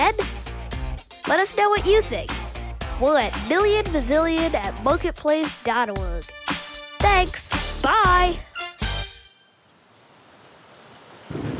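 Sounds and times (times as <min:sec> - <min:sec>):
speech: 0:00.0 - 0:00.3, 0:01.2 - 0:02.4, 0:03.0 - 0:06.4, 0:07.1 - 0:08.5
steady rain pattering and hissing outdoors: 0:09.4 - 0:11.5.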